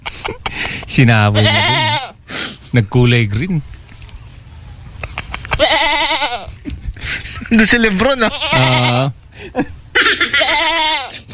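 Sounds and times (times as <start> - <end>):
speech: 1.0 - 1.7, 2.7 - 3.8, 7.5 - 10.3
goat bleating: 1.3 - 2.2, 5.5 - 6.6, 7.7 - 9.2, 10.0 - 11.3.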